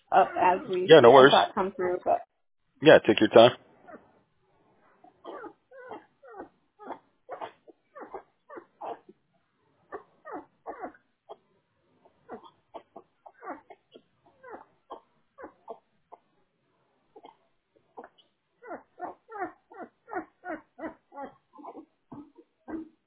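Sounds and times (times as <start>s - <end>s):
speech: 0.1s - 3.6s
week-old Great Dane puppies whimpering and squealing: 5.2s - 9.1s, 9.9s - 11.4s, 12.2s - 16.2s, 18.0s - 23.0s.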